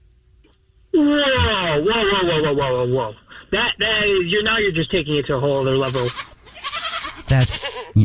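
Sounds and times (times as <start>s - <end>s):
speech: 1.8s - 6.2s, 7.3s - 8.0s
goat bleating: 5.5s - 8.0s.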